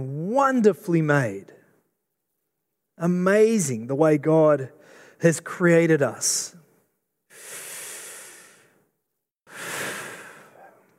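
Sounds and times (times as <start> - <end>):
speech: 0.0 - 1.6, 3.0 - 6.6
long deep breaths with airy inhale and breathy exhale: 4.8 - 5.2, 7.3 - 10.9.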